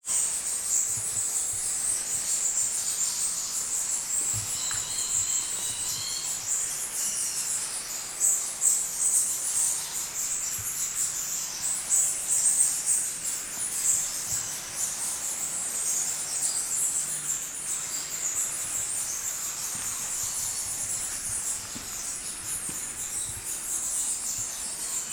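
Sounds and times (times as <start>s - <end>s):
steady hiss: 0.1s - 25.1s
bats chattering inside a bat cave in Krabi, Thailand: 0.2s - 25.1s.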